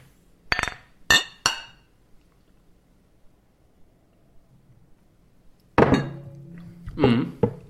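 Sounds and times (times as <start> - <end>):
glasses of Christmas beer clinking in a toast: 0.5 - 1.8, 5.8 - 6.7.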